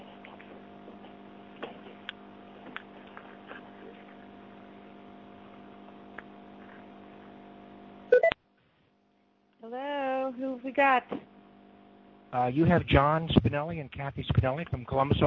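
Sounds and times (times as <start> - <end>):
quiet conference call line hum: 3.5 - 8.4
short loud electronic beep on a conference call line: 8.1 - 8.4
speech: 9.7 - 9.9, 10.6 - 11.3, 12.3 - 15.2.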